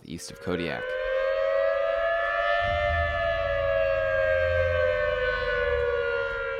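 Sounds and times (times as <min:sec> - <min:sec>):
loud tsunami warning siren wailing: 0:00.0 - 0:06.5
speech: 0:00.1 - 0:01.0
low rumbling noise: 0:02.1 - 0:06.5.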